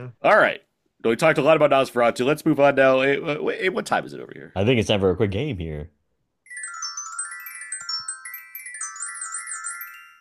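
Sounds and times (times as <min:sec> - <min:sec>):
speech: 0:00.0 - 0:06.0
electronic doorbell chime melody: 0:06.4 - 0:10.2.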